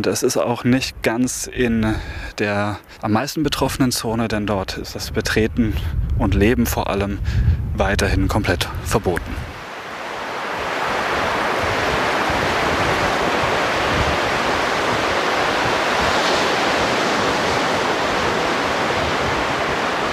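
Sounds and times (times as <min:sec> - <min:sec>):
speech: 0:00.0 - 0:09.4
Pacific ocean waves crashing against a seawall: 0:09.5 - 0:20.1.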